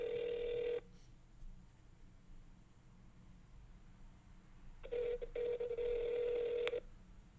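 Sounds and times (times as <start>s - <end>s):
long electronic ringback tone over a phone line: 0.0s - 0.8s, 4.8s - 6.8s.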